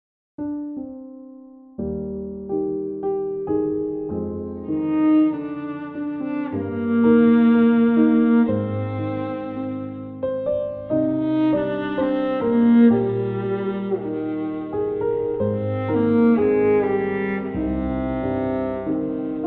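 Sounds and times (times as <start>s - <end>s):
piano playing a romance in E-flat major: 0.4s - 19.4s
viola playing a romance in E-flat major: 2.6s - 19.4s.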